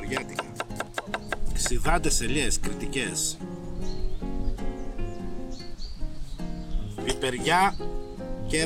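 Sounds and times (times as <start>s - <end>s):
knife slicing Cretan cucumber into rounds on a cutting board: 0.0s - 1.8s
tonal music: 0.0s - 5.6s, 6.2s - 8.6s
speech: 0.1s - 0.4s, 1.6s - 3.5s, 7.2s - 8.6s.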